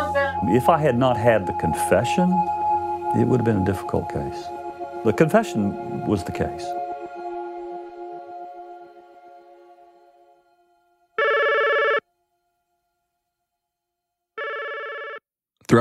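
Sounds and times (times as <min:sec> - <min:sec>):
tonal music: 0:00.0 - 0:11.4
speech: 0:00.4 - 0:06.8
telephone ringing unanswered in loud electronic bursts: 0:11.2 - 0:12.0, 0:14.4 - 0:15.2.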